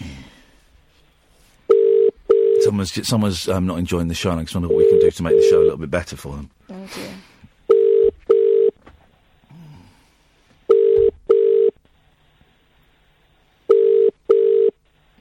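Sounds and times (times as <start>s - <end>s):
telephone line tone as someone places a call: 1.7s - 2.7s, 4.7s - 5.7s, 7.7s - 8.8s, 10.7s - 11.8s, 13.7s - 14.8s
speech: 2.7s - 7.2s.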